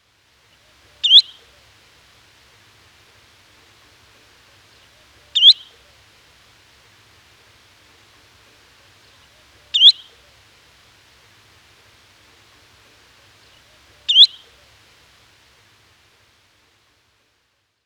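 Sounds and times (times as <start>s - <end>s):
spotted redshank whistled flight call: 1.0s - 1.6s, 5.0s - 6.0s, 9.3s - 10.4s, 13.4s - 14.8s.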